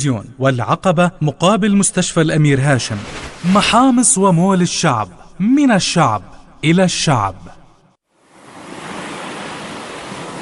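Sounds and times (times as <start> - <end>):
speech: 0.0 - 7.6
roar of sea waves and surf: 2.8 - 4.2, 8.1 - 10.3.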